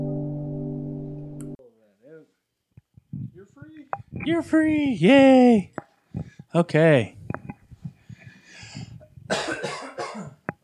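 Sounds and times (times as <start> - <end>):
speech: 4.2 - 5.7, 6.5 - 7.2
breathing: 5.9 - 6.6, 7.2 - 9.3
harsh coughs into the microphone: 9.2 - 10.5.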